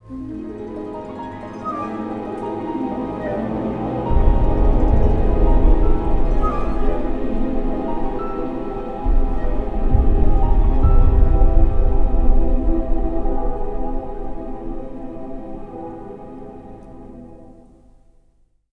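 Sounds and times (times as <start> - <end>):
suspense music: 0.0 - 18.2.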